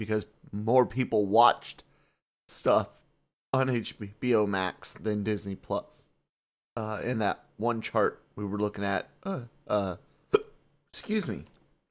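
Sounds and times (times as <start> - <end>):
speech: 0.0 - 1.9, 2.5 - 6.1, 6.8 - 10.0, 10.9 - 11.6
person hiccuping: 9.2 - 9.6, 10.3 - 10.6.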